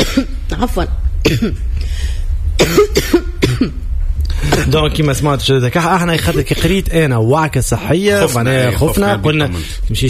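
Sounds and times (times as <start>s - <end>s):
ill woman coughing: 0.0s - 0.5s, 1.2s - 1.7s, 2.6s - 3.8s
steady low hum: 0.0s - 10.0s
speech: 0.6s - 1.8s, 2.6s - 3.8s, 4.5s - 10.0s.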